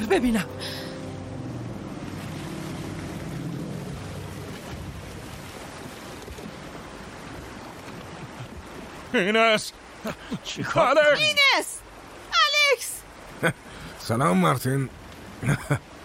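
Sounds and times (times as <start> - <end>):
boat engine droning: 0.0 - 9.1
rushing water and waves: 0.0 - 16.0
wind: 0.0 - 16.0
speech: 0.1 - 0.8, 9.1 - 11.8, 13.4 - 15.9.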